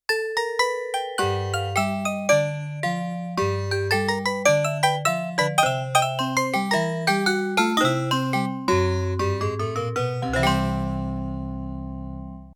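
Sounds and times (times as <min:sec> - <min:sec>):
sampled vibraphone from Yamaha TX16W in jazz performance: 0:00.1 - 0:12.4
sampled banjo from Yamaha TX16W in jazz performance: 0:07.5 - 0:11.5.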